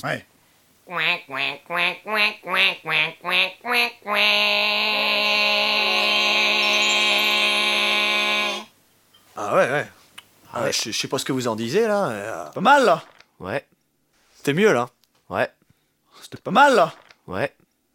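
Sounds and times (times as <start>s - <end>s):
speech: 0.0s - 0.3s, 0.9s - 6.5s, 9.4s - 13.7s, 14.4s - 15.6s, 16.3s - 17.6s
person imitating duck with nasal quacks: 0.8s - 8.7s.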